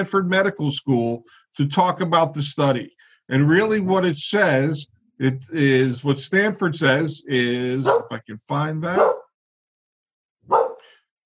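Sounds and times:
speech: 0.0s - 9.2s
dog barking: 7.8s - 8.2s, 8.9s - 9.4s, 10.4s - 11.0s.

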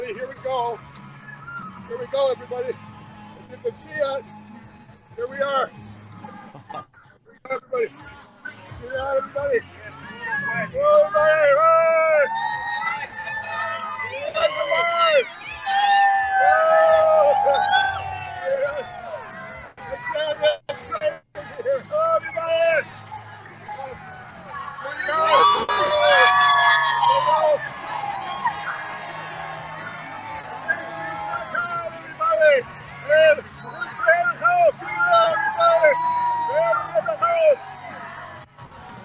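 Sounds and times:
large outdoor crowd in rain and mud murmuring and chattering: 0.0s - 39.0s
speech: 0.5s - 1.0s, 1.6s - 2.9s, 3.5s - 4.4s, 5.2s - 5.9s, 6.7s - 12.5s
outdoor crowd cheering and whooping: 12.1s - 19.5s, 24.2s - 39.0s.

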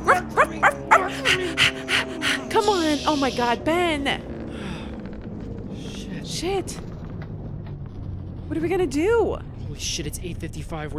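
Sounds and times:
puppy giving short high-pitched yappy barks: 0.0s - 2.4s
speech: 3.1s - 4.3s, 6.4s - 6.8s, 8.5s - 10.9s.

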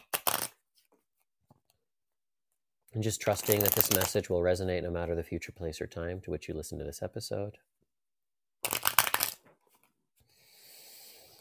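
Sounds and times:
deck of cards being riffle-shuffled: 0.0s - 1.0s, 3.2s - 4.2s, 8.6s - 9.9s
speech: 2.9s - 7.8s.

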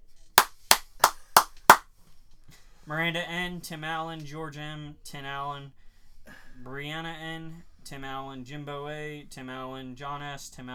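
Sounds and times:
sharp hand claps: 0.4s - 1.8s
speech: 2.9s - 5.8s, 6.6s - 10.7s.

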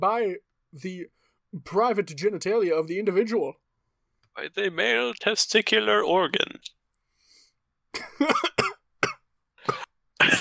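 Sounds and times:
speech: 0.0s - 3.6s, 4.4s - 6.8s, 7.9s - 8.7s
harsh coughs: 8.0s - 10.3s.

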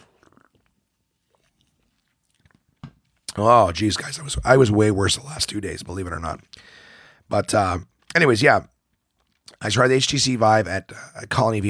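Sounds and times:
person sipping a drink: 0.0s - 3.4s
swallowing with wet mouth noises: 0.0s - 3.4s
speech: 3.4s - 8.7s, 9.5s - 11.6s.

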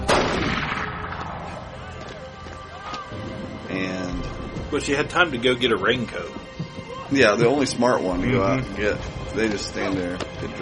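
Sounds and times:
gunshot fired into the air during a fight: 0.1s - 1.6s
speech: 4.7s - 10.6s.

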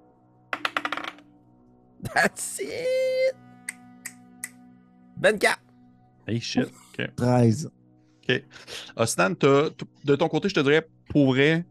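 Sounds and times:
dice clattering across a hard surface: 0.6s - 1.3s
speech: 2.0s - 3.5s, 5.2s - 5.6s, 6.3s - 11.6s.

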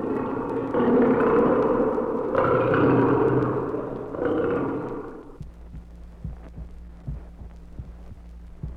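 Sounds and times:
lion roaring: 0.0s - 5.4s
soft steady rhythmic thumping: 1.5s - 8.7s.

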